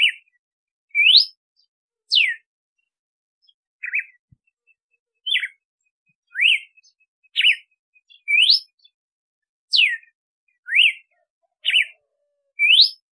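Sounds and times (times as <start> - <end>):
female Red-cowled cardinal whistled song: 0.9 - 1.4, 2.1 - 2.5, 5.2 - 5.6, 6.2 - 9.0, 9.7 - 12.0, 12.6 - 13.1.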